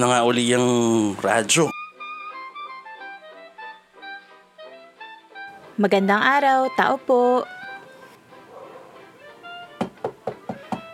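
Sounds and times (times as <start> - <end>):
speech: 0.0 - 1.8, 5.8 - 7.6
faint steady tonal sound: 0.0 - 10.9
quick solid knocks on a door: 9.8 - 10.9.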